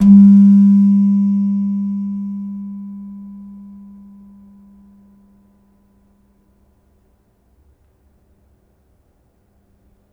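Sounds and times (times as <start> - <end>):
gamelan slentem struck hard: 0.0 - 4.4.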